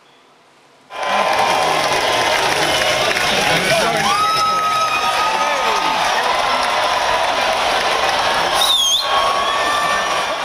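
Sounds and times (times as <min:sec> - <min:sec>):
large crowd cheering and shouting outdoors at cheese-rolling race in England: 0:00.9 - 0:10.4
whistles: 0:08.5 - 0:09.9.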